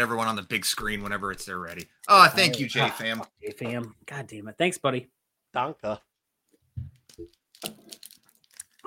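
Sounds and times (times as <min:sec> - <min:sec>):
wrestling trading card pack wrapper being torn open: 0:00.0 - 0:03.3, 0:07.4 - 0:08.8
speech: 0:00.0 - 0:06.1, 0:06.8 - 0:08.0.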